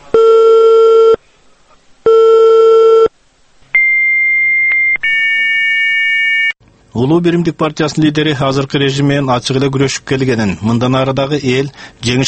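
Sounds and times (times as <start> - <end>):
telephone busy signal: 0.2 - 1.2, 2.1 - 3.1, 3.8 - 6.6
speech: 7.0 - 12.2.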